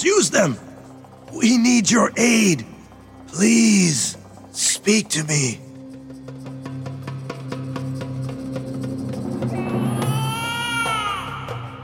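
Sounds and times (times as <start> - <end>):
speech: 0.0 - 0.7, 1.3 - 2.7, 3.3 - 5.7
low droning background: 0.0 - 10.2
newborn baby crying: 9.6 - 11.6.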